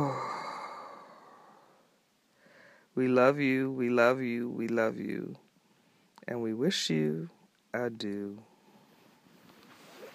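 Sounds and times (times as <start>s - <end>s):
long breathy exhale: 0.0s - 2.9s
speech: 3.0s - 5.4s, 6.3s - 8.5s.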